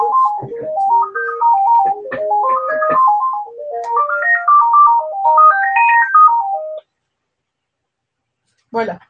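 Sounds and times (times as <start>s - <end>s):
mobile phone ringtone playing a bright electronic melody: 0.0s - 6.8s.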